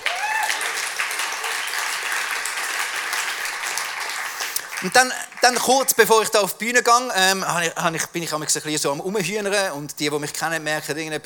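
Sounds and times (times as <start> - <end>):
whoops and cheers: 0.0 - 1.7
audience applause: 0.0 - 6.1
speech: 4.8 - 11.2.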